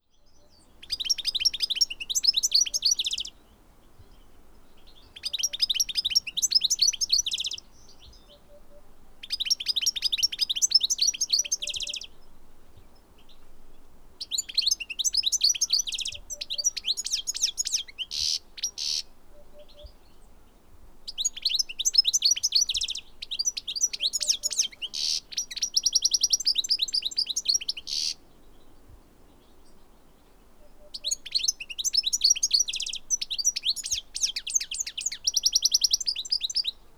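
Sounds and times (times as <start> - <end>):
goldfinch Carduelis carduelis singing: 0.2 - 20.3, 21.0 - 28.2, 30.7 - 36.8.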